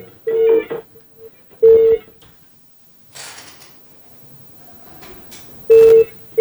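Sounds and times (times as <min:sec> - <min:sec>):
phone-line ringing tones of an unanswered call: 0:00.0 - 0:01.0, 0:01.6 - 0:02.1, 0:05.7 - 0:06.4.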